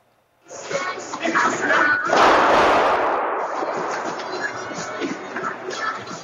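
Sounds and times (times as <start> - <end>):
panicked crowd scrambling and rushing at a mall: 0.5 - 6.2
shuffling footsteps: 0.5 - 6.2
voices: 0.5 - 6.2
loud bang at a mall: 2.0 - 5.5.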